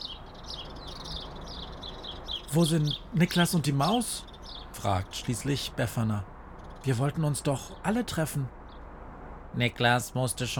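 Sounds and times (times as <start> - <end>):
sparrows chirping while pecking at crumbs on the ground: 0.0 - 10.5
speech: 2.5 - 8.6, 9.5 - 10.5.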